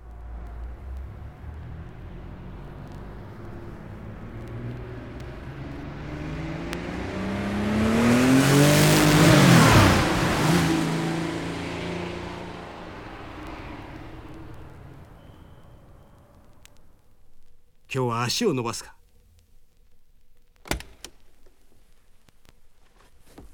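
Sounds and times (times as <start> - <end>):
supercharged Porsche engine revving: 0.0 - 16.2
speech: 17.9 - 19.0.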